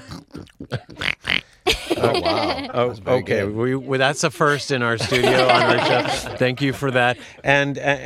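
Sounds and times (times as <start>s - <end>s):
person imitating pig snorts and grunts: 0.0s - 1.6s
laughter: 1.7s - 3.2s, 5.0s - 7.5s
speech: 2.0s - 8.0s.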